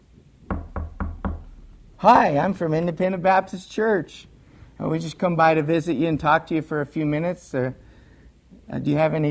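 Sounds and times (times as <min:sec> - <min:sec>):
firm knocks on a wooden door: 0:00.5 - 0:01.6
speech: 0:02.0 - 0:07.8, 0:08.7 - 0:09.2.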